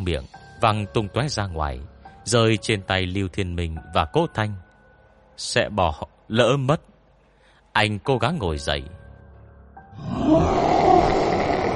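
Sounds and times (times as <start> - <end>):
speech: 0.0 - 4.6, 5.4 - 6.9, 7.8 - 9.0, 10.0 - 10.7
wounded mythical beast roaring in pain: 10.0 - 11.7.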